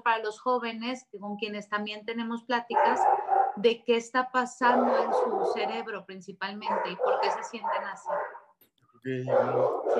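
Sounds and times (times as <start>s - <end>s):
speech: 0.0s - 8.4s, 9.0s - 9.9s
dogs barking: 2.7s - 3.6s, 4.6s - 6.0s, 6.6s - 8.5s, 9.2s - 9.9s.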